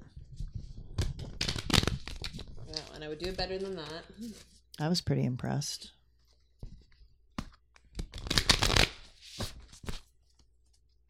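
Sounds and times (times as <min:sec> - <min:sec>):
deck of cards being shuffled: 0:00.2 - 0:04.6, 0:06.6 - 0:10.5
speech: 0:03.0 - 0:06.0.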